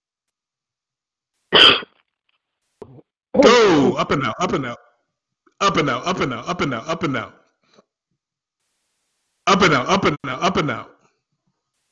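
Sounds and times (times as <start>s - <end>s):
harsh cough: 1.5s - 2.0s
speech: 2.8s - 4.9s, 5.6s - 7.4s, 9.5s - 10.9s.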